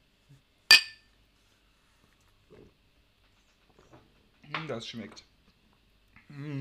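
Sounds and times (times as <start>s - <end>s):
glasses clinking in a toast: 0.7s - 1.0s
speech: 4.6s - 5.3s, 6.3s - 6.6s.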